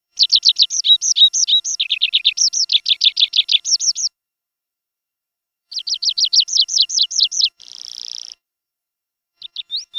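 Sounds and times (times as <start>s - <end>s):
prispolone birdsong: 0.2s - 4.2s, 5.7s - 8.4s, 9.4s - 9.9s.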